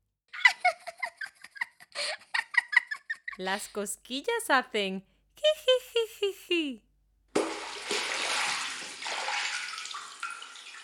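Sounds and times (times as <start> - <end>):
laughter: 0.4 - 3.4, 5.4 - 6.8
speech: 3.4 - 6.9
water splashing and sloshing: 7.4 - 10.8.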